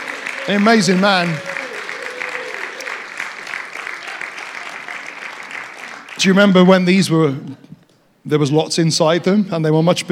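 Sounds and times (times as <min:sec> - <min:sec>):
crowd cheering: 0:00.0 - 0:06.2
crowd clapping: 0:00.0 - 0:06.9
speech: 0:00.5 - 0:01.5, 0:06.2 - 0:07.6, 0:08.2 - 0:10.1.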